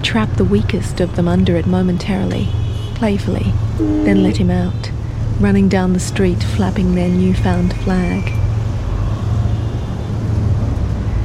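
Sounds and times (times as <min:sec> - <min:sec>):
street traffic with motorcycles and mopeds: 0:00.0 - 0:11.2
speech: 0:00.1 - 0:08.4.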